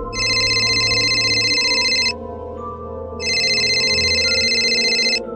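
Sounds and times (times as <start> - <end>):
phone ringtone of an incoming call: 0.1 - 2.1, 3.2 - 5.2.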